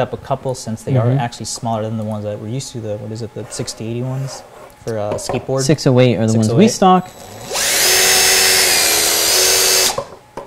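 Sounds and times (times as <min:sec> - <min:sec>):
speech: 0:00.0 - 0:07.6
impact drill spinning a 3D-printed propeller through water: 0:07.1 - 0:10.2.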